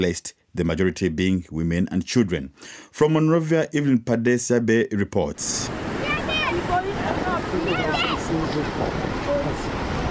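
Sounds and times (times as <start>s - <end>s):
speech: 0.0s - 6.0s
Atlantic Ocean surf crashing on shore at a slum in Monrovia: 5.4s - 10.1s
several voices murmuring and calling out indistinctly: 5.8s - 9.7s.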